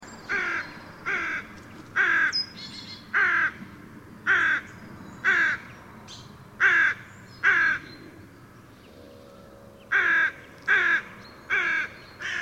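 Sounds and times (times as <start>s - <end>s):
carrion crow Corvus corone calling harsh caws: 0.3s - 2.4s, 3.1s - 3.6s, 4.3s - 5.7s, 6.6s - 7.9s, 9.9s - 12.4s.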